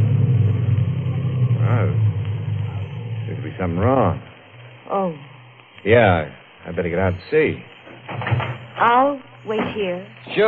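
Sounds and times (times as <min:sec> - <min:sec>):
choked car engine on the road running rough and sputtering: 0:00.0 - 0:04.3
speech: 0:03.6 - 0:04.3, 0:04.9 - 0:08.2, 0:08.8 - 0:10.4.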